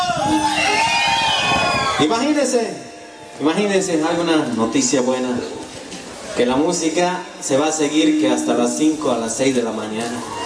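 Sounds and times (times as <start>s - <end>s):
crowd shouting and cheering: 0.0s - 6.8s, 9.8s - 10.4s
speech: 2.0s - 5.8s, 6.4s - 10.4s.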